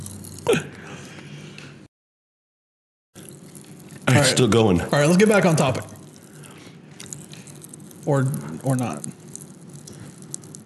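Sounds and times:
crunching while biting into a crisp snack: 3.2s - 4.1s, 5.7s - 10.6s
chewing: 3.2s - 10.6s
speech: 4.2s - 6.0s, 8.0s - 9.2s.

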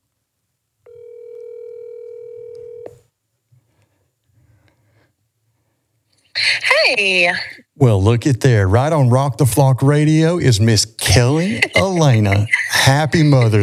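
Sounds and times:
electronic telephone ringback tone: 0.9s - 3.0s
speech: 6.9s - 13.6s
laughter: 11.0s - 13.6s.

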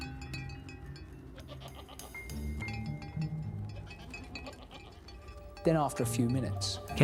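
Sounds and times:
light metallic clinks: 0.0s - 7.0s
small herd of goats bleating: 1.3s - 2.2s, 3.7s - 5.1s
speech: 5.6s - 7.0s.

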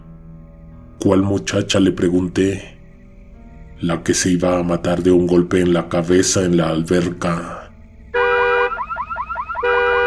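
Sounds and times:
speech: 1.0s - 2.8s, 3.8s - 7.6s
car alarm going off in a roofed space: 8.2s - 10.0s.

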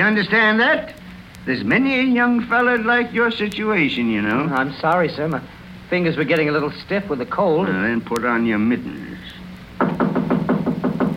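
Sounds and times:
speech: 0.0s - 9.3s
firm knocking on a door: 9.8s - 11.1s.

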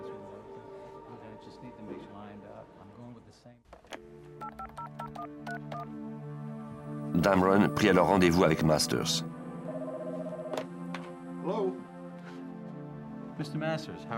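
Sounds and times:
touch-tone beeps of a telephone number being dialed: 4.4s - 5.9s
speech: 4.5s - 6.3s, 7.1s - 9.4s, 13.4s - 14.1s.

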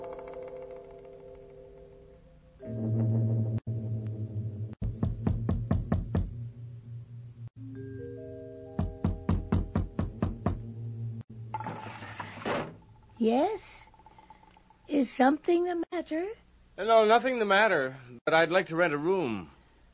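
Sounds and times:
droning music: 0.0s - 11.9s
knocking on a door: 4.8s - 6.4s, 8.8s - 10.7s
speech: 13.2s - 13.6s, 15.0s - 19.5s.

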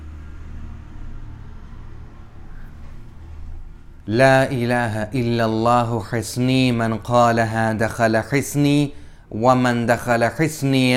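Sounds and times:
tractor engine rumbling: 0.0s - 7.3s
speech: 4.1s - 10.9s.

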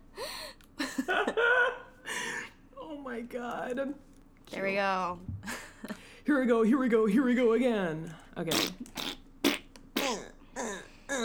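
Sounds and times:
laughter: 0.8s - 2.5s
speech: 3.2s - 5.6s, 6.3s - 9.0s
wet buzzing fart noises blown with the mouth: 8.5s - 11.2s.

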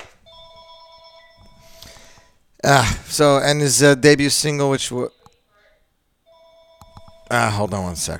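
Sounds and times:
phone ringing with a steady electronic ringtone: 0.3s - 2.2s, 6.2s - 7.6s
speech: 2.6s - 5.2s, 7.3s - 8.1s.

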